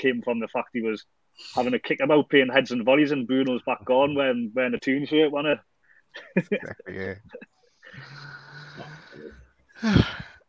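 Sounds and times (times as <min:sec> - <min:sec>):
speech: 0:00.0 - 0:10.3
person yawning: 0:07.9 - 0:10.4.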